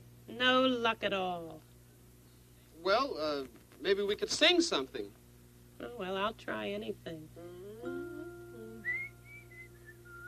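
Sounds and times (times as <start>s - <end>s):
speech: 0.4s - 1.7s, 2.8s - 5.2s, 5.8s - 8.0s
person whistling high notes: 8.8s - 10.2s.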